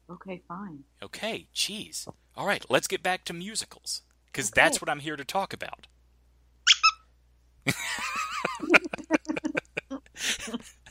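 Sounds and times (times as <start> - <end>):
speech: 0.1 - 5.9, 7.6 - 8.2
Chewbacca squeaky toy being squeezed: 6.7 - 7.1
laughter: 7.7 - 10.9.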